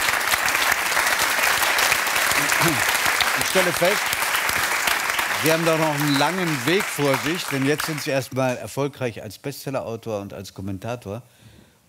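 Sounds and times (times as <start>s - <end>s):
audience applause: 0.0s - 8.6s
speech: 2.6s - 4.2s, 5.4s - 11.4s.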